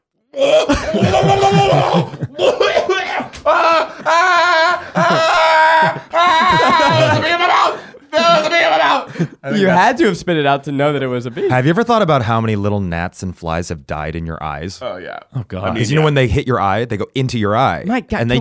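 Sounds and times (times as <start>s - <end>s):
speech: 0.3s - 2.2s, 9.5s - 18.3s
person imitating coughing and choking after swallowing a bee: 0.4s - 3.1s
laughter: 0.4s - 10.2s.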